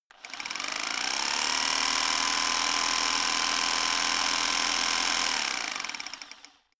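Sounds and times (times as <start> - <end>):
rock drill chisel running fast: 0.1 - 6.7.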